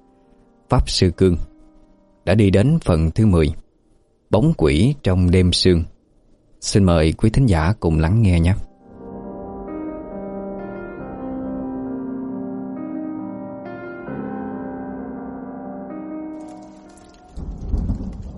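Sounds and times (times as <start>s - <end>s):
speech: 0.7s - 1.5s, 2.3s - 3.6s, 4.3s - 5.9s, 6.6s - 8.7s
rain falling on the eaves of a house: 16.4s - 18.3s
deep rumble: 17.4s - 18.3s.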